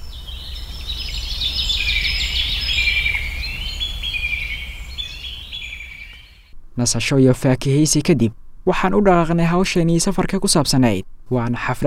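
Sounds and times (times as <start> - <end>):
various birds singing: 0.0 - 6.5
low steady hum: 0.0 - 11.8
speech: 6.8 - 11.8.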